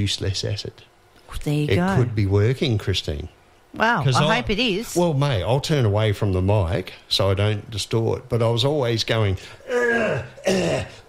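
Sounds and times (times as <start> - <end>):
speech: 0.0 - 11.0
throat clearing: 9.7 - 11.0.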